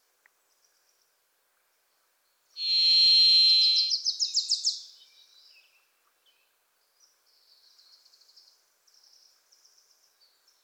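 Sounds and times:
Varied Thrush Ixoreus naevius song: 2.6s - 5.3s.

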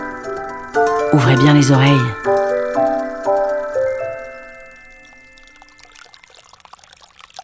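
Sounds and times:
bright bell-like tones: 0.0s - 6.6s
speech: 0.7s - 2.9s
stream of water flowing and trickling into a basin in a wash house: 4.2s - 7.4s.

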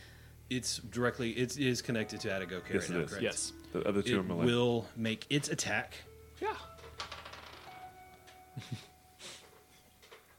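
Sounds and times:
speech: 0.5s - 6.7s
die thrown into a corner knocking and rattling: 6.6s - 8.4s.

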